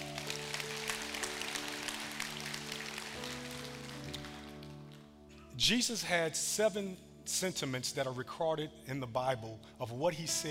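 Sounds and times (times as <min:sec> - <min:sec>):
audience giving a round of applause: 0:00.0 - 0:05.0
speech: 0:05.6 - 0:10.4.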